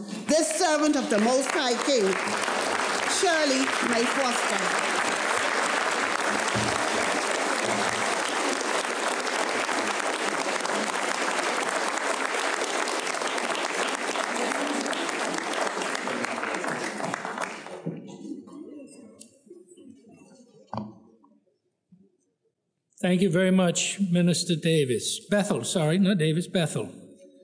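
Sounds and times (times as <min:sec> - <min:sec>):
murmur of voices: 0:00.0 - 0:12.2, 0:13.8 - 0:20.9
large audience standing ovation applause: 0:00.0 - 0:18.1
speech: 0:00.3 - 0:02.5, 0:03.2 - 0:05.2, 0:23.1 - 0:27.0.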